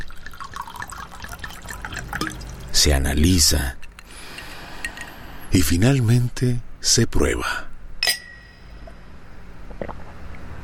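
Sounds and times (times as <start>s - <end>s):
rum pouring into a glass: 0.0s - 2.7s
speech: 2.8s - 3.8s, 5.5s - 7.7s.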